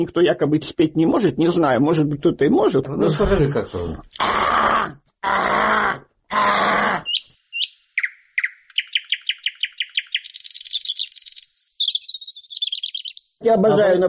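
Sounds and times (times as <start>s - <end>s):
speech: 0.0s - 5.4s, 13.4s - 14.0s
voice imitating a nightingale's gurgling song: 3.8s - 13.8s.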